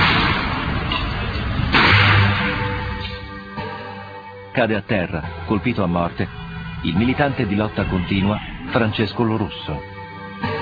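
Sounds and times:
gunshot fired by police during street clashes: 0.0 - 0.7, 1.7 - 3.0
speech: 4.6 - 10.5.

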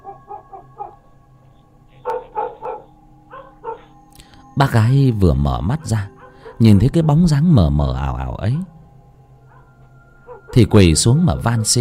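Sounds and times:
neighbour's dog barking loudly: 2.1 - 3.9, 6.2 - 6.6
speech: 4.6 - 8.8, 10.6 - 11.8.

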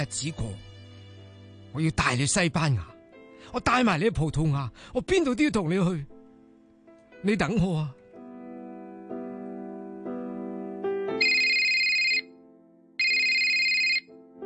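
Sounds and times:
speech: 0.0 - 0.7, 1.7 - 6.1, 7.2 - 8.0
telephone ringing with electronic ringtone melody: 11.2 - 12.3, 13.0 - 14.1.

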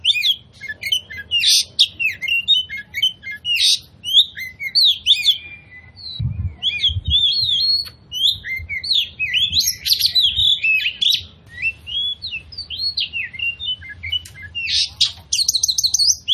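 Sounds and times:
Oriental magpie-robin song used as a lure: 0.0 - 16.3
faint low thuds: 6.2 - 7.5.

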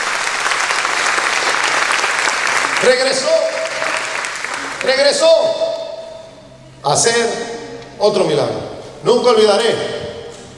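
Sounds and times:
church congregation applauding during a service: 0.0 - 6.1
speech: 2.8 - 3.6, 4.8 - 5.8, 6.8 - 9.9.

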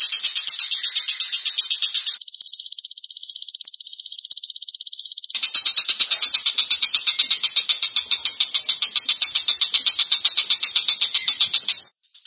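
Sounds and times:
speech: 0.1 - 1.0
Long-tailed shrike chattering song: 2.2 - 11.8.

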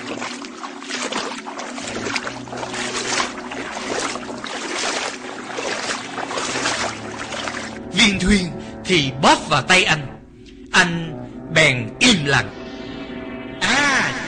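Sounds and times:
feet wading through water at a cave entrance: 0.0 - 8.0
speech: 8.2 - 10.1, 10.8 - 11.0, 11.6 - 12.6.

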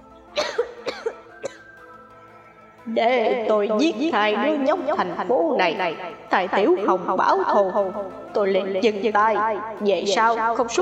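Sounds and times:
old man in a dry coughing fit: 0.4 - 1.7
speech: 2.9 - 10.7.

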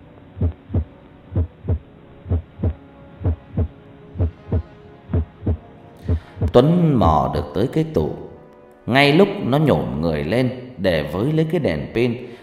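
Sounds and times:
boy's heart pounding: 0.4 - 6.6
speech: 6.6 - 8.2, 8.9 - 12.4.

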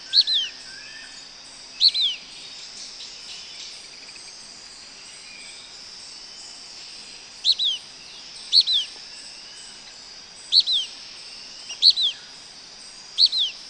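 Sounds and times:
Blackish pewee Contopus nigrescens nigrescens giving paired notes: 0.0 - 0.6, 1.8 - 2.2, 7.4 - 7.9, 8.5 - 9.0, 10.5 - 11.0, 11.6 - 12.3, 13.2 - 13.6
continuous high insect drone: 0.0 - 13.6.

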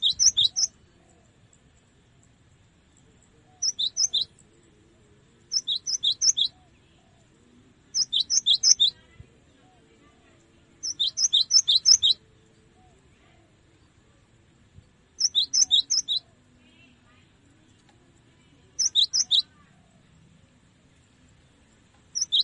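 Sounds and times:
cinereous tit singing high sharp two-pitched chirps: 0.0 - 0.8, 3.5 - 4.5, 5.5 - 6.6, 7.9 - 9.0, 10.8 - 12.2, 15.1 - 16.3, 18.7 - 19.6, 22.0 - 22.4.

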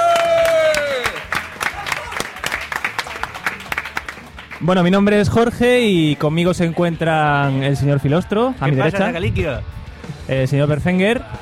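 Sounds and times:
crowd applauding and cheering at a podcasting event in Alicante: 0.0 - 5.3
speech: 4.6 - 11.3.

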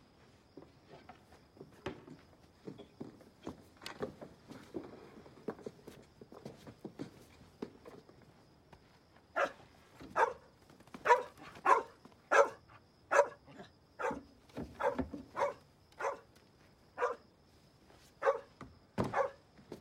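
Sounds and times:
dog barking: 9.4 - 16.3, 17.0 - 17.2, 18.2 - 19.4.

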